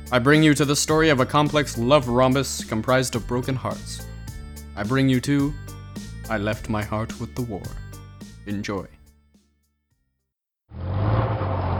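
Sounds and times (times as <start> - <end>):
speech: 0.1 - 4.1, 4.8 - 7.8, 8.5 - 9.0
bus engine starting and pulling away: 10.7 - 11.7.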